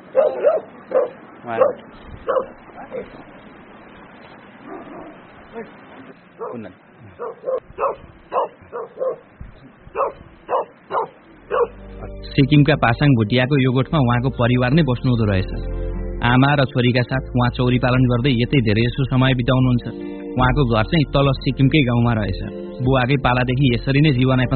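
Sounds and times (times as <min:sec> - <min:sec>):
dogs in Sikkim barking while chasing each other: 0:00.0 - 0:03.1, 0:04.6 - 0:11.8
speech: 0:01.5 - 0:03.4, 0:05.5 - 0:09.3, 0:12.4 - 0:24.5.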